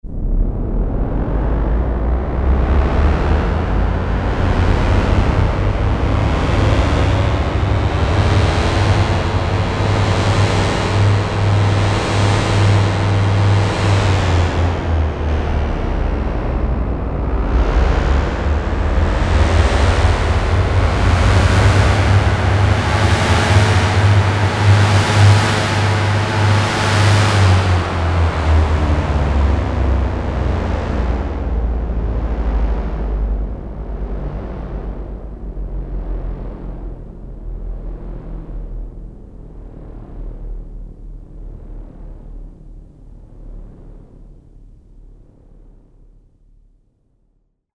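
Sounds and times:
Roland Jupiter-8 synthesizer starting up: 0:00.0 - 0:40.7.

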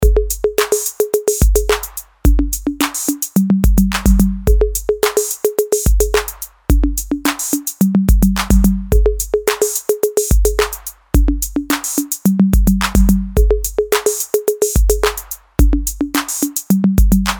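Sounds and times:
Roland TR-808 conga rhythms: 0:00.0 - 0:17.3.

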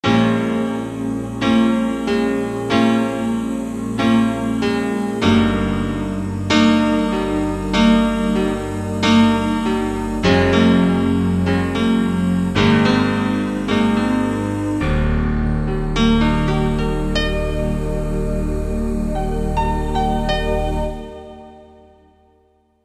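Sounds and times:
air piano ensemble: 0:00.0 - 0:22.4.

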